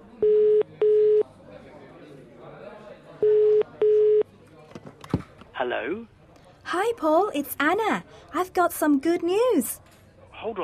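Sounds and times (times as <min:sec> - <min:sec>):
phone ringback tone beeps heard through a handset: 0:00.2 - 0:01.2, 0:03.2 - 0:04.3
speech: 0:05.7 - 0:09.8, 0:10.4 - 0:10.6.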